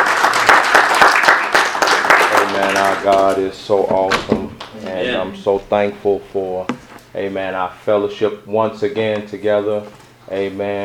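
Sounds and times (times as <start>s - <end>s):
crowd clapping hands in praise: 0.0s - 3.5s
speech: 2.7s - 10.8s.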